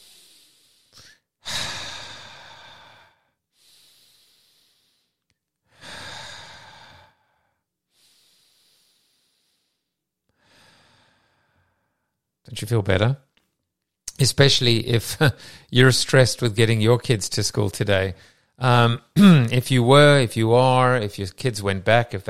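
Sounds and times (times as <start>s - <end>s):
deep breathing in and out with hissing exhales: 0.0s - 12.2s, 15.4s - 15.7s, 18.2s - 18.6s
speech: 12.5s - 13.3s, 14.2s - 22.2s.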